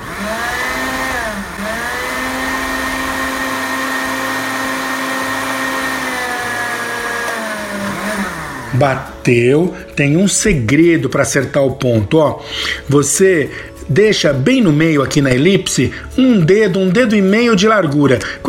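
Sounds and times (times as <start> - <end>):
blender blending cooked carrots: 0.0 - 9.2
speech: 8.8 - 18.4.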